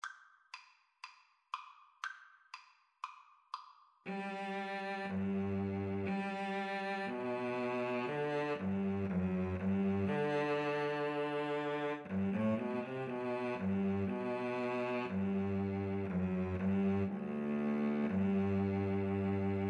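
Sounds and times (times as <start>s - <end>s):
oboe and cello duet: 4.1s - 19.6s.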